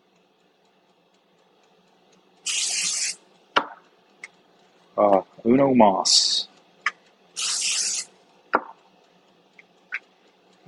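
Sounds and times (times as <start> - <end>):
spray bottle spraying while cooking: 2.4 - 3.2, 7.4 - 8.1
sharp clicks and taps: 2.8 - 5.3, 6.6 - 10.6
speech: 5.0 - 6.2.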